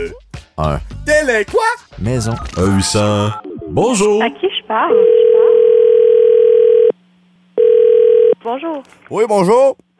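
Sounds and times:
speech: 0.0 - 5.2, 8.4 - 9.8
loud steady telephone line beep tone: 4.9 - 7.0, 7.6 - 8.4.

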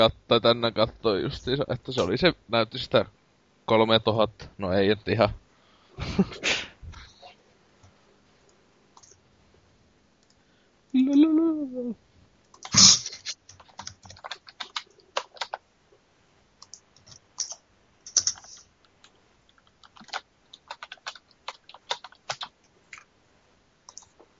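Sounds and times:
speech: 0.0 - 5.4, 6.0 - 6.7, 10.9 - 12.1
laughter: 6.0 - 6.5
typing on a computer keyboard: 9.0 - 9.2, 12.5 - 12.7, 13.5 - 15.6, 16.6 - 23.1, 23.9 - 24.2.

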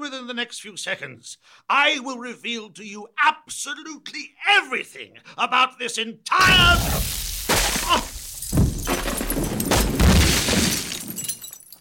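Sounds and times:
speech: 0.3 - 7.2
loud explosion: 6.4 - 10.8
clatter of breaking glass and fragments: 6.4 - 11.7
crashing and shattering debris: 6.4 - 11.7.

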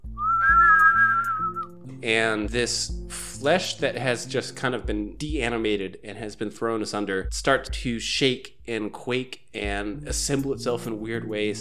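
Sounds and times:
strange eerie high wavering whistle: 0.1 - 1.7
speech: 2.0 - 11.5.

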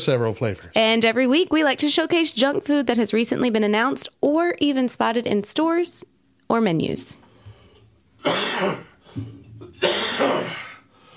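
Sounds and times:
speech: 0.0 - 7.2, 8.2 - 10.6
person coughing hard with deep chesty bursts: 8.2 - 10.8.

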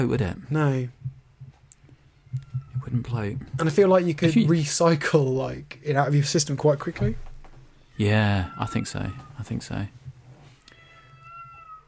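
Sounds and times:
speech: 0.0 - 1.0, 2.3 - 7.3, 8.0 - 10.0
female cat meowing: 2.1 - 3.1, 7.8 - 9.6, 10.5 - 11.8.

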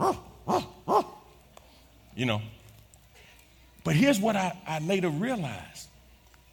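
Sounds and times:
voice imitating a dog barking: 0.0 - 1.3
speech: 2.2 - 2.6, 3.8 - 5.9.

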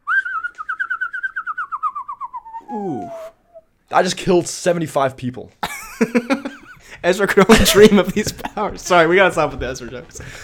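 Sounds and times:
person whistling a single warbling note: 0.0 - 3.6
speech: 2.7 - 10.4
laughter: 5.6 - 8.8.

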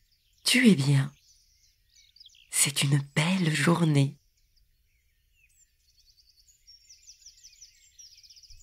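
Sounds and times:
birds chirping and twittering in a garden: 0.0 - 8.6
speech: 0.5 - 1.2, 2.6 - 4.2.

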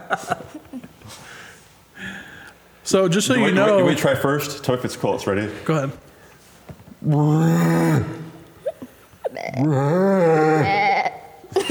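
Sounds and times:
speech: 0.1 - 1.2, 2.9 - 6.1, 7.0 - 8.2, 9.6 - 10.8
person imitating a rhino call with strained bleating groans: 7.1 - 11.4.

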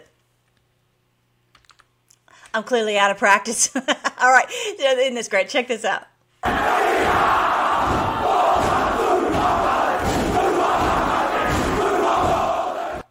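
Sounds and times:
speech: 2.6 - 6.1
large crowd cheering and chanting in unison: 6.4 - 13.1.

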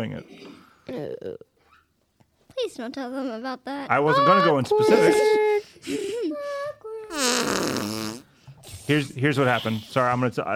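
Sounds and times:
speech: 0.0 - 1.5, 2.6 - 8.2, 8.9 - 10.5
voice making a drawn-out fart noise: 7.1 - 8.3.

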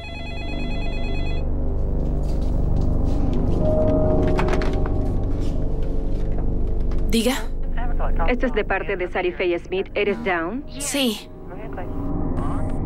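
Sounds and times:
telephone ringing with an electronic trill: 0.0 - 1.5
dense rumbling dramatic backdrop: 1.5 - 12.8
speech: 7.1 - 7.5, 8.1 - 11.3.

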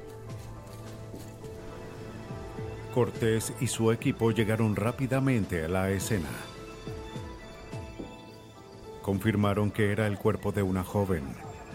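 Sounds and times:
horse hooves clip-clopping: 0.0 - 2.8
speech: 3.0 - 6.5, 9.1 - 11.5.

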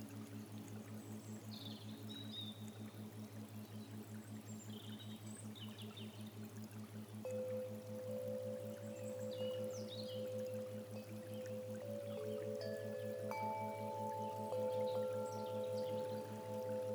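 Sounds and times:
soft sustained musical tones: 0.2 - 16.9
flowing water like a gentle stream: 6.4 - 16.9.

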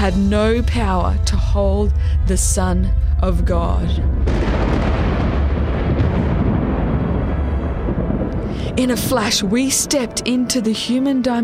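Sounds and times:
speech: 0.0 - 4.4, 8.8 - 11.4
loud sustained rumble of thunder: 3.0 - 10.2.

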